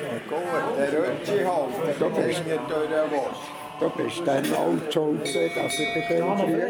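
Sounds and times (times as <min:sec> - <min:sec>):
voices chattering in a busy room: 0:00.0 - 0:06.6
ship's bell struck by bartender: 0:05.2 - 0:06.6.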